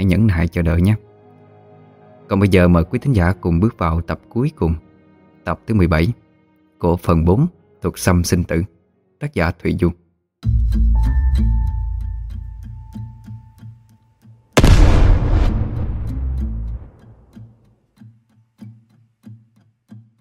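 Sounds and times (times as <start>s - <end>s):
speech: 0.1s - 1.1s, 2.3s - 4.8s, 5.4s - 6.2s, 6.8s - 11.6s
explosion sound effect: 14.6s - 17.3s.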